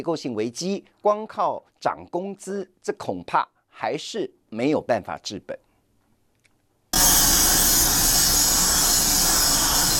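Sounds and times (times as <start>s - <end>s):
speech: 0.0s - 5.6s
harsh grinding noise on a production line: 7.0s - 9.9s.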